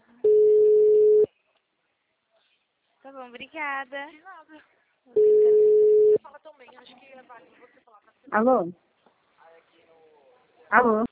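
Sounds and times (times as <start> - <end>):
telephone call being dialed: 0.3 - 1.3, 5.2 - 6.2
speech: 3.2 - 5.6, 6.2 - 8.9, 10.7 - 11.1.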